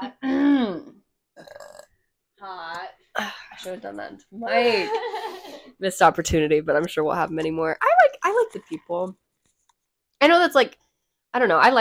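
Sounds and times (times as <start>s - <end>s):
burp: 0.2s - 2.0s
speech: 3.6s - 5.1s, 5.8s - 7.9s, 8.5s - 9.2s, 10.2s - 10.8s, 11.4s - 11.7s.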